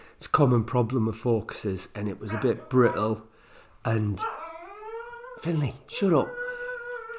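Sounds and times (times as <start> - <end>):
speech: 0.4 - 4.4, 5.4 - 6.4
dog whining howl: 2.3 - 3.2, 4.2 - 7.1.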